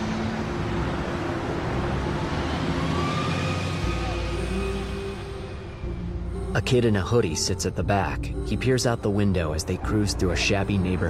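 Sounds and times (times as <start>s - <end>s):
city bus engine rumbling as it pulls away from a stop: 0.0s - 11.0s
road and cabin noise: 0.0s - 11.0s
speech: 6.6s - 11.0s.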